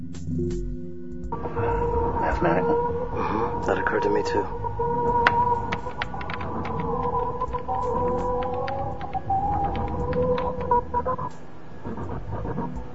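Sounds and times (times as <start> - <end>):
steady electronic tones in groups of three: 0.3 - 12.9
speech: 4.3 - 5.7, 11.0 - 12.9
faint crackling clicks: 5.0 - 12.9.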